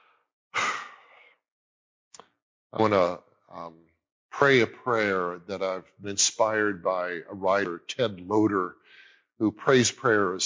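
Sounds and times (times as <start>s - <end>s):
deep breath: 0.0s - 1.4s, 8.8s - 9.3s
speech: 2.7s - 8.8s, 9.4s - 10.4s.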